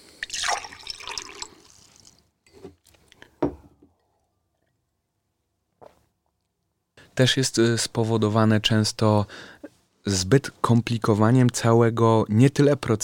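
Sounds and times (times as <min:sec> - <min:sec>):
water poured into a drinking glass: 0:00.2 - 0:02.2
speech: 0:07.2 - 0:13.0.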